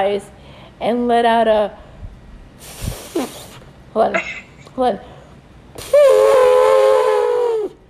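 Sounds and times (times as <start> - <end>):
speech: 0.0 - 1.8, 2.6 - 5.1
voice imitating an elephant trumpeting: 5.8 - 7.8.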